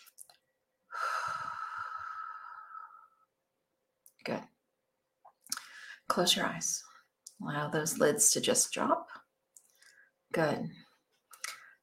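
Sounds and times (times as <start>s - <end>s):
long soft exhale from a guided breathing exercise: 0.9s - 3.3s
speech: 4.2s - 4.5s, 6.1s - 9.2s, 10.4s - 10.8s.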